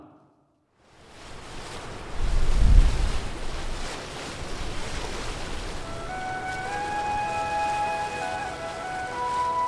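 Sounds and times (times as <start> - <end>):
ocean waves crashing and washing: 0.8 - 9.6.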